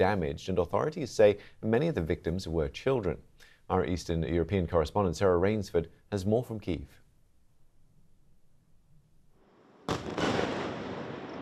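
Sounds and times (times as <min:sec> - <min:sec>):
speech: 0:00.0 - 0:07.0
explosions from Russian missile and drone strikes on Kyiv at night: 0:09.8 - 0:11.3
long rumbling crackling tail of explosions: 0:09.9 - 0:11.3.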